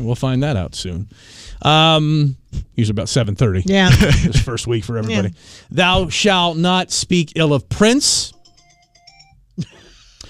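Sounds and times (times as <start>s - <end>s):
speech: 0.0s - 8.4s, 9.6s - 9.8s
mobile phone ringing in a radio studio: 8.3s - 9.4s.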